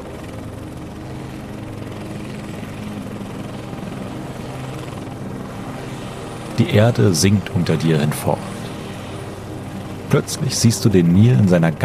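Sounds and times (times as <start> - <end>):
helicopter rotor and engine taking off for a flight over the Nile: 0.0 - 11.8
speech: 6.6 - 8.6, 10.1 - 11.8.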